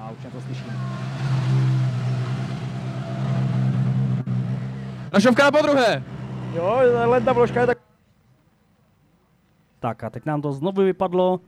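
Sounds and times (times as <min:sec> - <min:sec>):
rally car engine droning on a rally special stage: 0:00.0 - 0:07.8
speech: 0:00.2 - 0:01.0, 0:05.1 - 0:07.8, 0:09.8 - 0:11.4.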